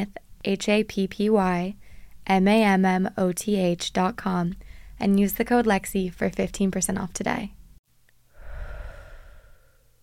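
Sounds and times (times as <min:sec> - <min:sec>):
speech: 0:00.0 - 0:07.6
uneven inhale while partly holding the breath: 0:01.8 - 0:02.2, 0:04.6 - 0:05.0, 0:08.3 - 0:10.0.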